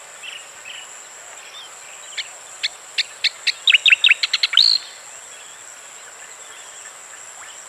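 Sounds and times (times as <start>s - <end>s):
striated grassbird singing: 2.6s - 5.0s.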